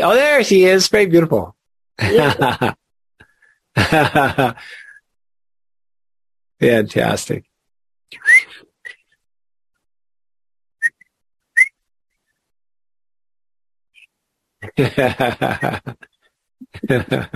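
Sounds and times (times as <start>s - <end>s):
speech: 0.0s - 2.8s, 3.8s - 4.8s, 6.6s - 7.5s, 8.1s - 8.6s, 14.7s - 16.1s, 16.7s - 17.3s
laughter: 2.0s - 2.8s, 3.8s - 4.8s, 14.6s - 16.0s, 16.6s - 17.3s
person whistling short sharp chirps: 8.1s - 8.6s, 10.8s - 11.8s.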